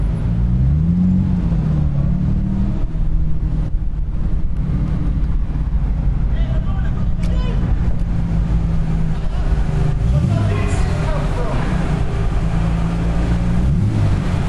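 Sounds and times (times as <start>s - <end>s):
engine rumble of vehicles rolling aboard a ferry: 0.0s - 14.4s
man shouting directions: 6.3s - 7.7s, 10.2s - 11.8s.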